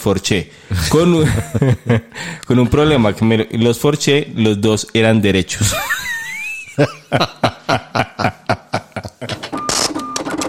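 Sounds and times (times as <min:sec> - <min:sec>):
speech: 0:00.0 - 0:06.1, 0:06.8 - 0:09.4
laughter: 0:00.7 - 0:02.3, 0:05.6 - 0:09.5
cash register clacking: 0:09.3 - 0:10.4.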